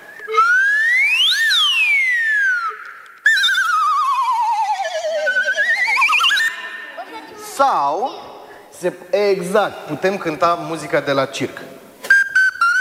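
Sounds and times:
slide whistle glissando: 0:00.0 - 0:07.2, 0:12.0 - 0:12.7
speech: 0:07.6 - 0:08.2, 0:08.8 - 0:11.8.

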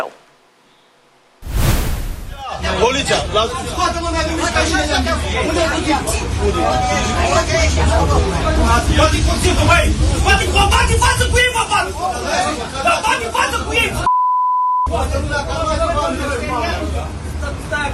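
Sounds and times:
men arguing and shouting inside a packed city bus in Galați: 0:02.4 - 0:14.1, 0:14.9 - 0:17.9
brief beep: 0:14.1 - 0:14.9.

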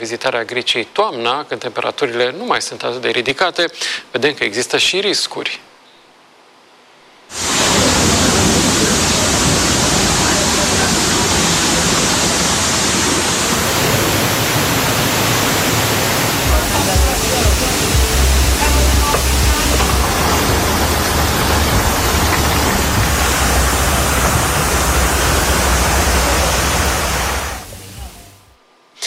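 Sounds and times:
speech: 0:00.0 - 0:05.8
floodwater rushing through streets: 0:07.3 - 0:28.4.

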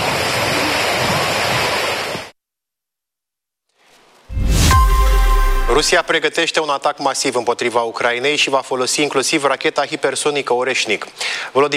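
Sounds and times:
sea waves on a shore: 0:00.0 - 0:02.3
bright tonal sound: 0:04.3 - 0:06.1
speech: 0:05.8 - 0:11.7.

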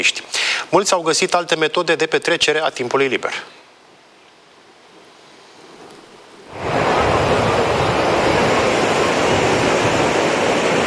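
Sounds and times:
speech: 0:00.0 - 0:03.6
wind: 0:00.0 - 0:10.8
large sea waves breaking on the shore: 0:06.5 - 0:10.8.

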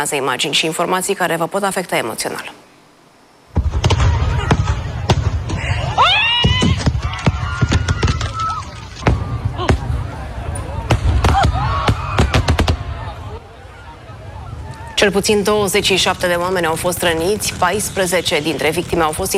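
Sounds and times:
speech: 0:00.0 - 0:02.6, 0:15.0 - 0:19.3
fireworks exploding at a pyrotechnics festival in Spain: 0:03.5 - 0:13.2, 0:15.2 - 0:19.3
crowd shouting and screaming in alarm: 0:05.6 - 0:15.0.

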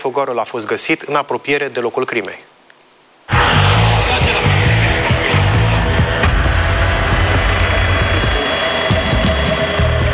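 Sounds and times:
speech: 0:00.0 - 0:02.5
police helicopter engine whine: 0:03.3 - 0:10.1.

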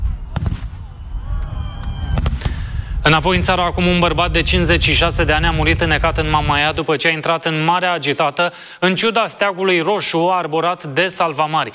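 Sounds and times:
continuous low rumble of fireworks: 0:00.0 - 0:06.9
fireworks booming at a pyrotechnic festival: 0:00.0 - 0:07.3
speech: 0:03.1 - 0:11.7.

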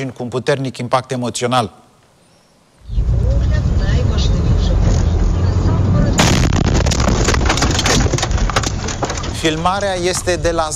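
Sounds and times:
speech: 0:00.0 - 0:01.8, 0:09.4 - 0:10.7
roaring rumble after drone explosion: 0:02.8 - 0:10.7
kamikaze drone explosion near car: 0:06.1 - 0:08.3
crackling and rattling debris: 0:06.2 - 0:10.7.

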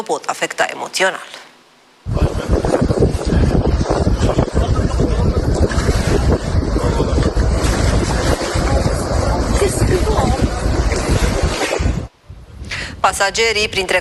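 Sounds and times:
speech: 0:00.0 - 0:01.4, 0:13.0 - 0:13.9
wind buffeting the microphone at sea: 0:02.0 - 0:13.9
churning sea water: 0:02.2 - 0:12.1.

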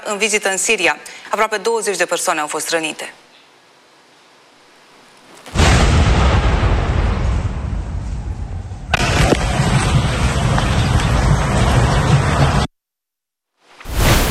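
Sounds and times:
speech: 0:00.1 - 0:03.2
explosion roar: 0:05.5 - 0:12.7.

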